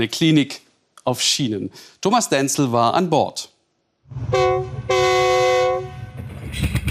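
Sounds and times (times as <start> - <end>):
speech: 0.0 - 3.5, 4.1 - 5.1
clinic train rumbling: 4.1 - 6.9
clinic train horn blasts: 4.3 - 6.2.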